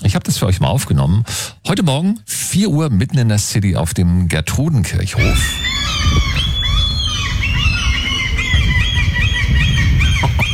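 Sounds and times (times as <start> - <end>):
speech: 0.2 - 6.5
gulls calling loudly outdoors: 5.2 - 10.5.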